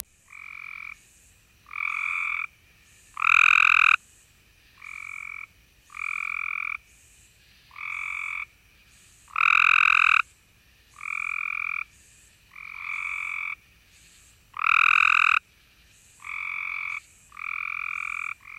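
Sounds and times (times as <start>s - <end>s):
Cope's grey tree frog Hyla chrysoscelis calling: 0.0s - 15.5s, 16.1s - 18.5s.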